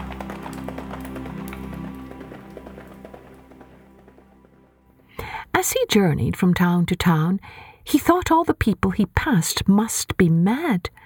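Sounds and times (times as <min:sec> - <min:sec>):
rhythmic hoofbeats of a ridden horse: 0:00.0 - 0:05.9
speech: 0:05.6 - 0:11.0.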